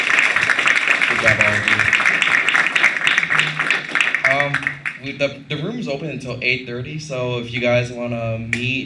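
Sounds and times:
audience applauding panelists: 0.0s - 5.0s
speech: 5.0s - 8.8s.

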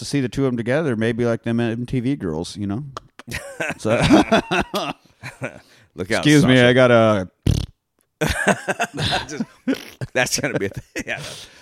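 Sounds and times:
speech: 0.0s - 7.6s, 8.2s - 11.6s
laughter: 3.3s - 5.7s, 8.2s - 11.5s
fart noise: 7.4s - 7.8s.

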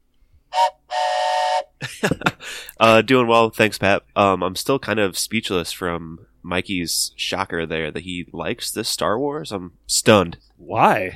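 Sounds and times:
train whistle blasts: 0.5s - 1.8s
laughter: 1.8s - 2.6s
speech: 2.8s - 11.1s.

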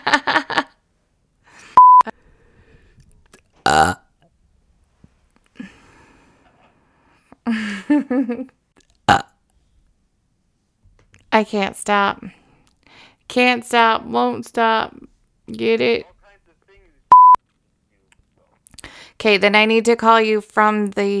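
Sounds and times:
speech: 0.1s - 0.5s, 11.4s - 12.4s, 13.3s - 16.1s, 19.2s - 21.1s
electronic beep: 1.8s - 2.0s, 17.1s - 17.4s
person burping: 3.6s - 4.1s, 9.1s - 9.4s.

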